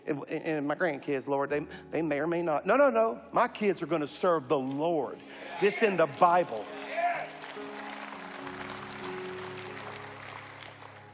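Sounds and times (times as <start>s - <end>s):
speech: 0.1s - 6.9s
crowd giving polite golf-style applause: 5.5s - 11.1s.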